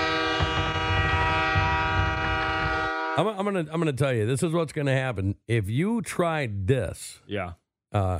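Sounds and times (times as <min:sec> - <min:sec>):
low rumbling rail noise: 0:00.0 - 0:03.2
train horn blaring: 0:00.0 - 0:03.5
speech: 0:03.2 - 0:08.1.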